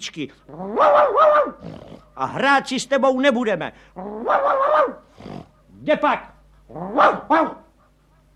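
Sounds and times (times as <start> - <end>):
speech: 0.0 - 5.0, 5.8 - 7.6
dog barking: 0.7 - 1.7, 4.2 - 5.0, 6.8 - 7.7.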